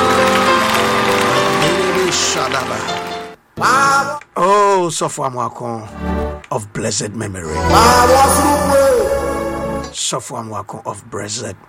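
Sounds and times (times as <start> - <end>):
audience applause: 0.0 - 3.4
sustained musical tones: 0.0 - 4.2, 7.4 - 10.0
speech: 4.8 - 9.2, 10.1 - 11.6.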